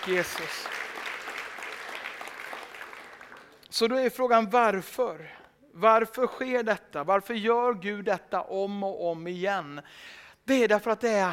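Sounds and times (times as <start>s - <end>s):
speech: 0.0s - 0.9s, 3.7s - 11.3s
church congregation applauding during a sermon: 0.0s - 4.0s.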